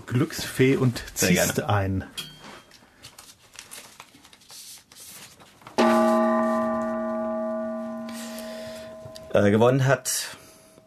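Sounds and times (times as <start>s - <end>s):
speech: 0.1s - 2.3s, 9.4s - 10.4s
soft rustling and crinkling: 2.4s - 6.2s
gong strike: 5.8s - 9.4s.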